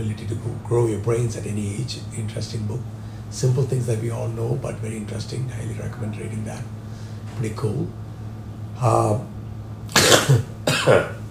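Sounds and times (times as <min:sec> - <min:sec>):
speech: 0:00.1 - 0:06.8, 0:07.4 - 0:08.0, 0:08.8 - 0:09.4, 0:10.3 - 0:11.2
person coughing: 0:09.9 - 0:11.2.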